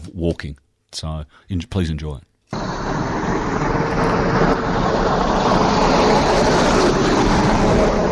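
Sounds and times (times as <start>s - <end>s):
speech: 0.2s - 4.8s
loud steady rumble and hiss of busy road: 2.6s - 8.1s
truck roaring past on a busy road: 2.6s - 8.1s.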